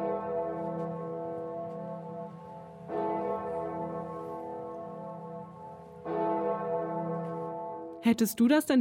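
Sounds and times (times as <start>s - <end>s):
large deep bell in Erfurt Cathedral tolling: 0.0s - 8.0s
speech: 8.0s - 8.7s.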